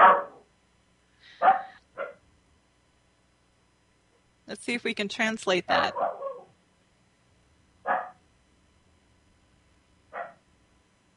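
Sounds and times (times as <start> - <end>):
dog barking: 0.0 - 0.5, 1.4 - 2.2, 5.8 - 6.5, 7.9 - 8.2, 10.1 - 10.4
speech: 4.6 - 6.1.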